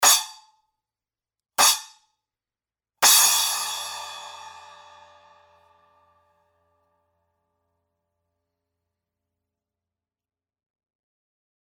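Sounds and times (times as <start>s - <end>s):
10-inch splash cymbal crash choked: 1.6s - 1.9s, 3.0s - 6.1s.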